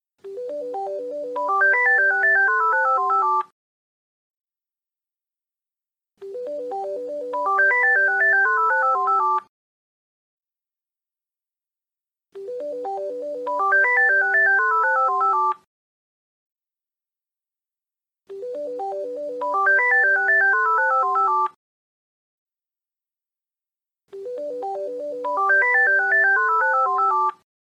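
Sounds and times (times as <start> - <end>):
Siemens Gigaset phone ringtone melody: 0.3 - 3.4, 6.2 - 9.5, 12.4 - 15.6, 18.3 - 21.6, 24.2 - 27.4.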